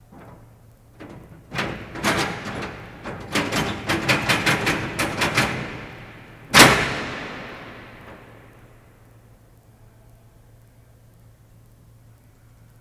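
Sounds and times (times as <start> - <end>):
heavy duty door latch: 0.1 - 8.7.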